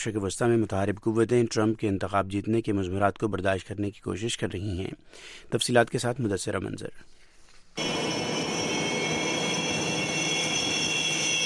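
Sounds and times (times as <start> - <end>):
speech: 0.0 - 7.2
Russian jet aircraft taking off from an aircraft carrier: 7.8 - 11.4.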